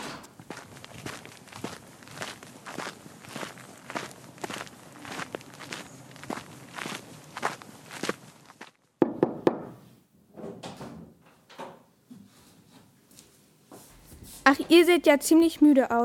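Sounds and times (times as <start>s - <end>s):
footsteps shuffling: 0.0s - 8.9s, 13.1s - 15.5s
sharp knocks on the door of a modest inn: 9.0s - 9.8s
speech: 14.5s - 16.0s.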